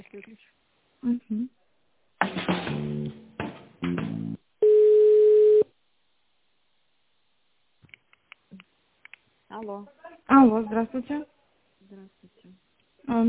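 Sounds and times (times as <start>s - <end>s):
speech: 0.2s - 1.6s, 9.8s - 11.3s, 11.9s - 13.2s
telephone call tone while placing a business call: 4.6s - 5.7s.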